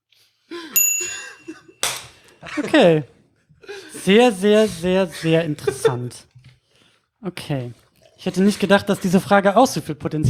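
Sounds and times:
bell ding: 0.8s - 2.0s
speech: 2.6s - 3.2s, 4.0s - 6.3s, 7.2s - 10.2s
laughter: 3.6s - 6.5s.

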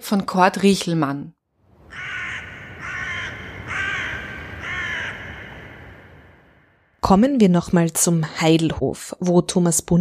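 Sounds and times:
speech: 0.1s - 1.4s, 7.1s - 9.9s
crows cawing: 1.8s - 7.0s.

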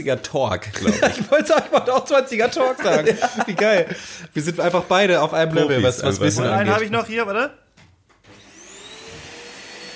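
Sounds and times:
speech: 0.0s - 7.6s
laughter: 0.7s - 4.3s
vacuum cleaner running: 8.3s - 9.9s.

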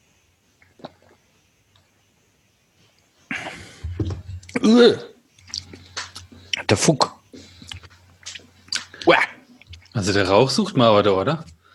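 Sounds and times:
wet mouth noises: 0.6s - 1.3s, 4.4s - 4.7s, 5.3s - 10.0s
speech: 4.7s - 5.1s, 6.7s - 7.1s, 10.0s - 11.5s
sipping and slurping beer from a glass: 5.4s - 6.8s, 7.4s - 10.1s.

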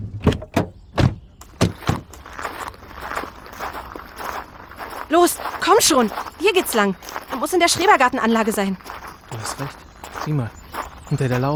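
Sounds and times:
steady rustling: 0.2s - 2.7s
footsteps outdoors: 0.2s - 11.5s
speech: 5.1s - 11.5s.

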